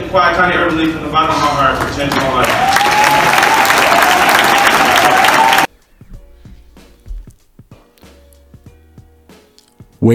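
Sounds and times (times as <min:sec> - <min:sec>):
speech: 0:00.1 - 0:03.5
audience applause: 0:02.0 - 0:05.7.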